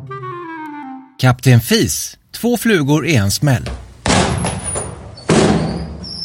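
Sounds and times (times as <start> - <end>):
speech: 1.2 - 3.8
bedroom door flying open with a thud: 4.1 - 6.2.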